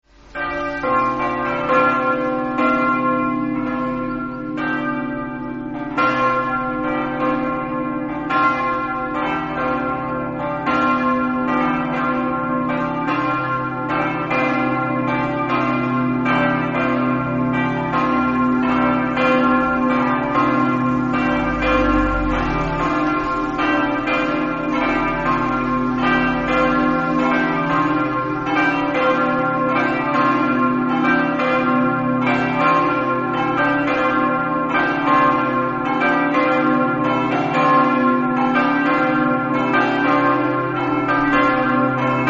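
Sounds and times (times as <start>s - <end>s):
bells ringing: 0.1s - 42.2s.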